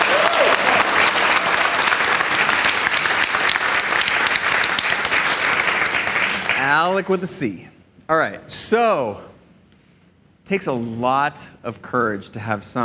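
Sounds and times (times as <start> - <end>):
crowd applauding: 0.0 - 6.8
speech: 6.8 - 9.3, 10.5 - 12.8.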